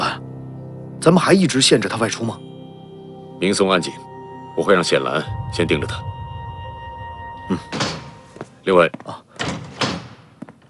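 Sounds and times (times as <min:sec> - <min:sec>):
speech: 0:01.0 - 0:02.5, 0:03.4 - 0:06.1, 0:07.5 - 0:07.8, 0:08.7 - 0:09.2
door swinging open with a whoosh and rattle: 0:09.4 - 0:10.3.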